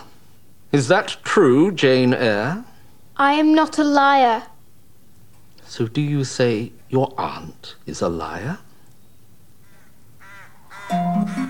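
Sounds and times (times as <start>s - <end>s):
speech: 0.7s - 4.5s, 5.7s - 8.6s
crows cawing in flight: 9.6s - 11.0s.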